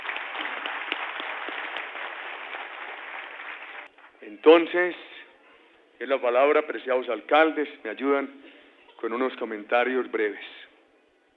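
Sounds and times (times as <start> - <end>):
audience applauding: 0.0 - 3.9
sharp individual claps: 0.0 - 3.9
speech: 4.3 - 5.1, 6.0 - 10.6.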